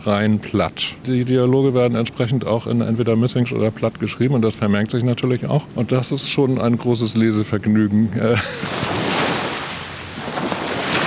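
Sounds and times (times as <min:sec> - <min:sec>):
speech: 0:00.0 - 0:09.0
river waves washing against the shore: 0:08.6 - 0:11.0.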